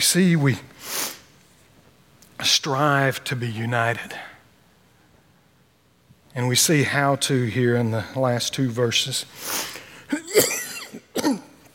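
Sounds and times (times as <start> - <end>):
speech: 0.0 - 1.0, 2.4 - 4.3, 6.4 - 10.4
man coughing during a sermon: 10.1 - 11.7.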